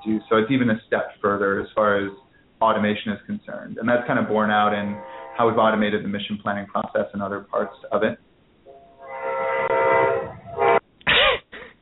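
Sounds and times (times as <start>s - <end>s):
speech: 0.0s - 8.3s
train horn blast: 4.0s - 5.8s, 8.7s - 10.8s.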